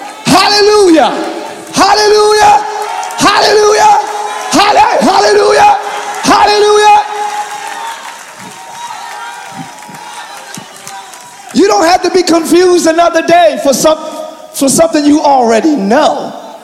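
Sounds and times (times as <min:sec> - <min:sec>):
crowd of people yelling rising shouted calls: 0:00.0 - 0:12.5
speech: 0:01.0 - 0:02.7, 0:03.3 - 0:04.0, 0:11.6 - 0:16.4.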